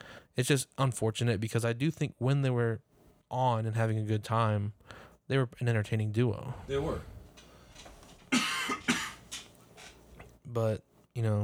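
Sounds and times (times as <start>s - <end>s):
speech: 0.4s - 7.2s, 10.5s - 11.4s
person with allergies coughing: 8.3s - 9.3s.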